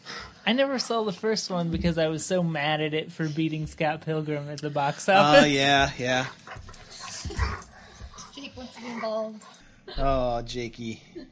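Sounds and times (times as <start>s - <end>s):
faint noise: 0.0s - 11.2s
speech: 0.5s - 6.7s, 8.6s - 11.2s
laughter: 5.0s - 6.3s
dog giving short yappy barks: 5.3s - 9.6s.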